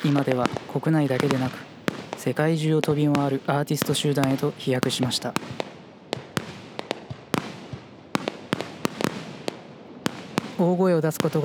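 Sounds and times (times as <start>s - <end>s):
soft hiss: 0.0s - 5.7s
speech: 0.0s - 5.7s, 10.6s - 11.4s
fireworks popping and crackling: 0.0s - 11.4s.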